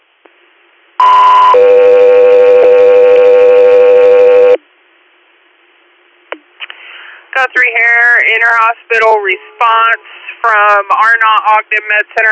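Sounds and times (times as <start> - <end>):
radio dispatch alert tones for an air medical crew: 1.0 - 4.6
speech: 7.5 - 12.2.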